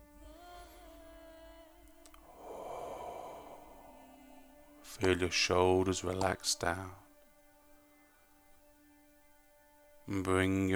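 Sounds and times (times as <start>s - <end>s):
steady sustained tones: 0.0s - 10.7s
slow deep exhale through the mouth during a guided relaxation exercise: 2.1s - 5.0s
speech: 5.0s - 7.0s, 10.1s - 10.7s.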